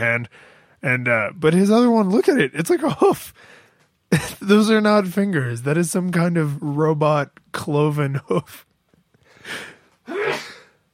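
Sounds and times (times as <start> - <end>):
speech: 0.0 - 8.7
person sneezing: 10.1 - 10.8.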